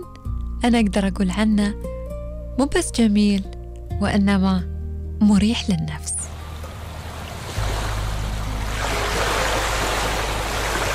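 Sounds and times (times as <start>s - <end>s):
speech: 0.6s - 1.9s, 2.6s - 6.2s
Atlantic Ocean waves crashing against rocks in northern Morocco: 7.0s - 10.9s.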